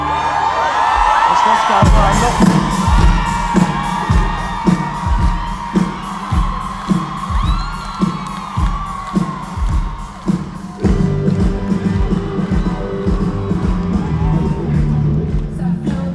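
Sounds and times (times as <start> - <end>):
crowd shouting: 0.0 - 15.3
applause: 3.1 - 16.0.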